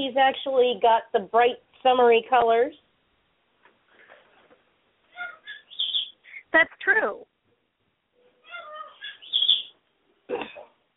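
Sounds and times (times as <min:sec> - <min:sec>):
speech: 0:00.1 - 0:02.8, 0:06.5 - 0:07.3, 0:10.3 - 0:10.7
small pet chicken chirping: 0:05.1 - 0:06.4, 0:08.2 - 0:09.8.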